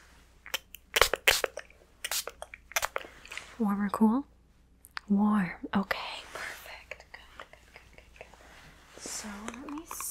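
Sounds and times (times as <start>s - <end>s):
spray bottle spritzing: 0.5s - 3.0s
speech: 3.6s - 4.3s, 5.1s - 6.1s.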